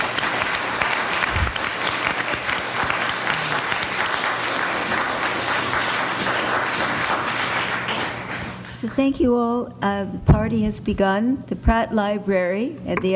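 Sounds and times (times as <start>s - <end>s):
large audience applauding: 0.0s - 8.8s
speech: 9.0s - 13.1s.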